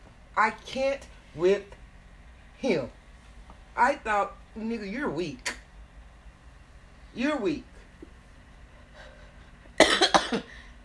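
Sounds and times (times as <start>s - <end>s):
speech: 0.4s - 1.8s, 2.6s - 3.0s, 3.8s - 5.5s, 7.1s - 7.7s
person coughing: 9.8s - 10.6s.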